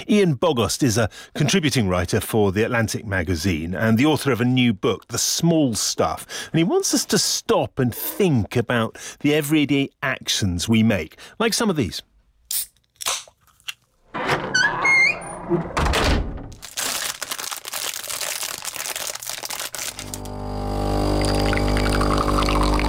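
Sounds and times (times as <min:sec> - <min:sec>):
speech: 0:00.0 - 0:12.7, 0:15.5 - 0:15.9
can cracking open with a fizz: 0:12.5 - 0:13.9, 0:16.7 - 0:20.3
door thudding shut: 0:14.1 - 0:16.6
plastic wrapping crinkling: 0:16.5 - 0:20.3
coffee machine whirring hum: 0:19.9 - 0:22.8.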